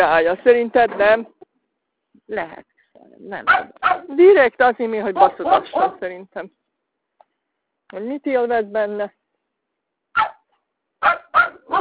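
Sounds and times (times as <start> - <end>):
speech: 0.0 - 1.4, 2.2 - 6.6, 7.9 - 9.2
dogs barking during a phone call: 3.4 - 4.1, 5.2 - 6.0, 10.2 - 11.8.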